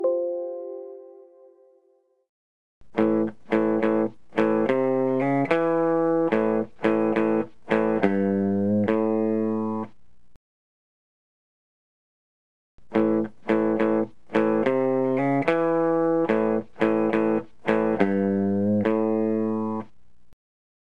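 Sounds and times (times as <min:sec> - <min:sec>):
guitar: 0:02.8 - 0:10.0, 0:12.8 - 0:19.9.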